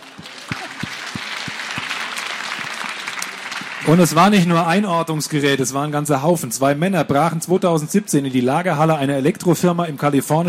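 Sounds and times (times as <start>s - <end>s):
applause from a small group: 0.0s - 5.8s
speech: 3.8s - 10.4s.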